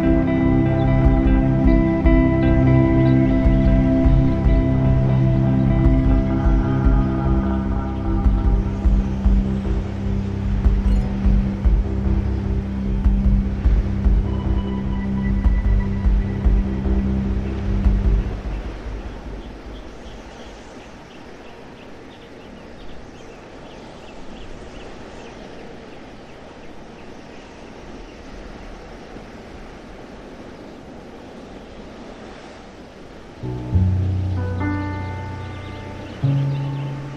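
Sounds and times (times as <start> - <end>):
low rumble: 0.0 - 20.6
ambient music with sustained layered chords: 0.0 - 21.1, 33.4 - 37.1
wind over summer countryside: 0.0 - 37.1.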